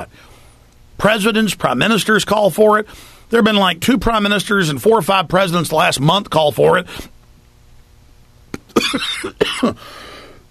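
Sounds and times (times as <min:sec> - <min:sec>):
speech: 0:01.0 - 0:07.1, 0:08.9 - 0:10.1
person coughing after inhaling a piece of spinach while eating: 0:08.6 - 0:10.0.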